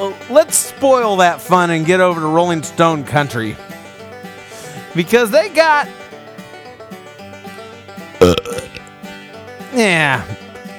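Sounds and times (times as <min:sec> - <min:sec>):
speech: 0:00.0 - 0:03.7, 0:05.0 - 0:06.0, 0:09.8 - 0:10.4
long loud belch dropping in pitch: 0:08.2 - 0:08.9
short gravelly burp: 0:08.2 - 0:08.9.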